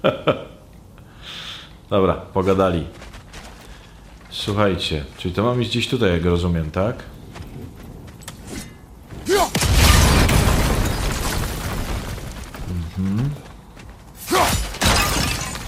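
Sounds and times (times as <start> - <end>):
speech: 0.0 - 0.5, 1.9 - 3.1, 4.4 - 7.2
steady video game sound: 0.0 - 15.6
crumbling rumble: 2.8 - 14.1
objects smashing in a video game: 9.2 - 13.1, 14.2 - 15.6.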